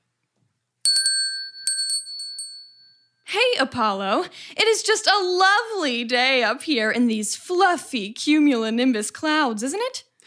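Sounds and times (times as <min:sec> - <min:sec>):
bright high bell ringing: 0:00.9 - 0:03.2
speech: 0:03.3 - 0:10.2.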